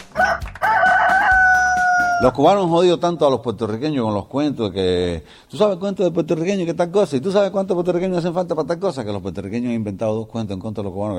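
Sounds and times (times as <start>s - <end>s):
rooster crowing: 0.0s - 2.4s
speech: 2.2s - 11.1s.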